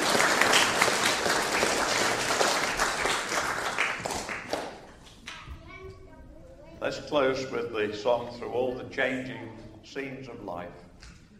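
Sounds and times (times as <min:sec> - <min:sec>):
audience applause: 0:00.0 - 0:04.9
speech: 0:06.9 - 0:10.8.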